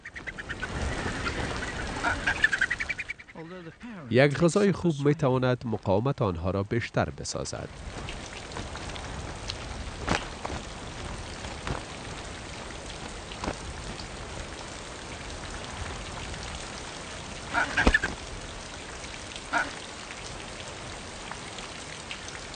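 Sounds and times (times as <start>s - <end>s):
faint bird calls: 0.0s - 4.1s, 19.5s - 19.9s
steady rain in cold weather: 0.0s - 22.5s
speech: 2.0s - 2.5s, 3.4s - 8.1s.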